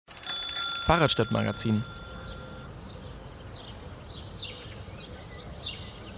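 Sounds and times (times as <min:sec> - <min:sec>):
birds chirping in a park: 0:00.8 - 0:06.1
speech: 0:00.9 - 0:02.0.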